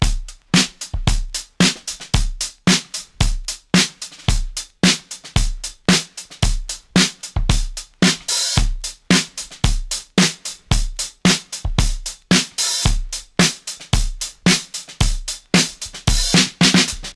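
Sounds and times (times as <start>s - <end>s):
drum beat in C sharp key at 112 bpm: 0.0s - 17.1s.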